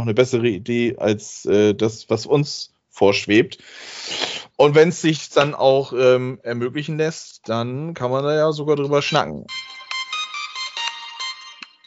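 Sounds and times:
speech: 0:00.0 - 0:09.6
telephone ringing with electronic melodic ringtone: 0:09.0 - 0:11.8.

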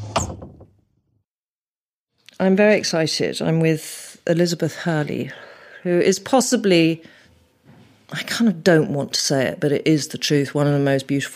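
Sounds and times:
wooden wardrobe door swinging open with a sharp clunk: 0:00.0 - 0:00.8
speech: 0:02.4 - 0:07.2, 0:08.1 - 0:11.3.

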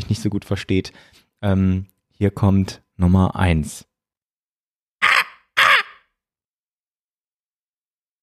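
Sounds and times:
speech: 0:00.1 - 0:03.9
voice imitating raven caws: 0:05.0 - 0:06.1.

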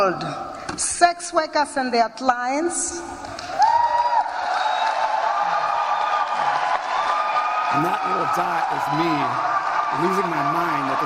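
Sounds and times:
speech: 0:00.0 - 0:03.5, 0:07.7 - 0:11.0
large crowd at a speech cheering and applauding: 0:03.2 - 0:11.0
high voices whooping: 0:03.4 - 0:11.0.

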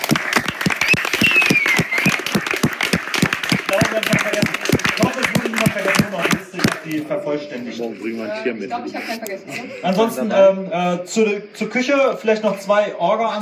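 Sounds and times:
whistles and cheers: 0:00.0 - 0:04.0
applause from a sizeable audience: 0:00.0 - 0:06.9
speech: 0:07.3 - 0:13.4.

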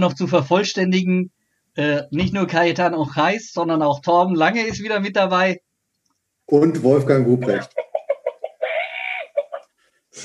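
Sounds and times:
speech: 0:00.0 - 0:05.6, 0:06.5 - 0:07.8
laughter: 0:06.8 - 0:07.7
chicken clucking: 0:07.2 - 0:10.2.

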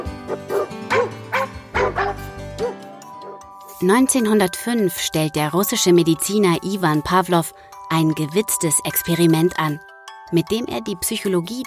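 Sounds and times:
dog barking: 0:00.0 - 0:03.4
speech: 0:03.8 - 0:11.6.

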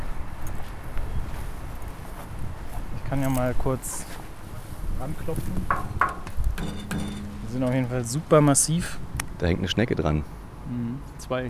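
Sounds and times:
footsteps swishing through long unmown grass on a trodden path: 0:00.0 - 0:05.6
speech: 0:03.1 - 0:04.2, 0:05.0 - 0:11.4.

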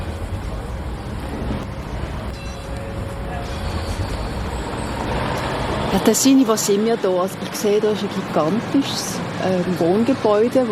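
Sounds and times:
faint mechanical whine: 0:00.0 - 0:07.2
heavy traffic in the Telli quarter of Aarau: 0:00.0 - 0:10.7
large construction machinery at a residential block being renovated: 0:00.0 - 0:10.7
speech: 0:05.9 - 0:10.7.

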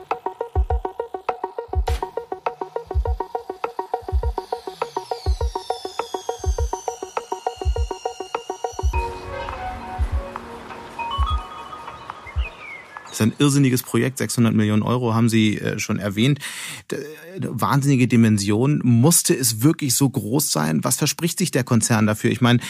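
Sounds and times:
steady rhythmic thumping beat: 0:00.0 - 0:09.2, 0:10.0 - 0:13.1
song built from recordings of factory and work sounds in Siemensstadt: 0:00.0 - 0:12.5
pulsing tonal layers: 0:00.0 - 0:12.6
speech: 0:13.2 - 0:22.6.

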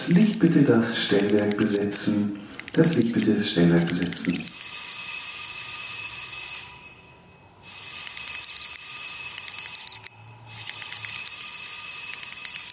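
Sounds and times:
speech: 0:00.0 - 0:04.6
theatre backstage electric bell ringing as third bell signal: 0:04.4 - 0:12.7.

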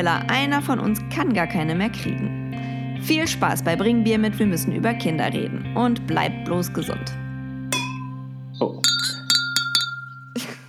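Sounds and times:
speech: 0:00.0 - 0:02.4, 0:03.0 - 0:07.2
champagne flute knocking against a crémant bottle: 0:07.7 - 0:10.6.

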